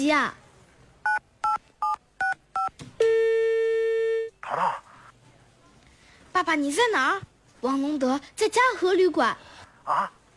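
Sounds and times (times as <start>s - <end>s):
speech: 0.0s - 0.4s, 6.4s - 10.2s
telephone keypad beeps: 1.0s - 3.3s
steady continuous telephone line tone: 1.0s - 4.7s.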